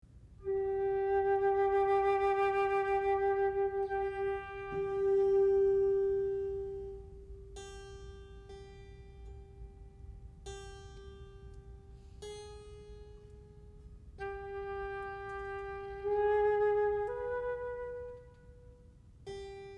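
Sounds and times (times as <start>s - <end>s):
flute: 0.4s - 7.6s, 14.2s - 19.0s
oboe: 0.4s - 7.8s, 14.2s - 19.1s
cello: 0.4s - 8.5s, 13.2s - 19.7s.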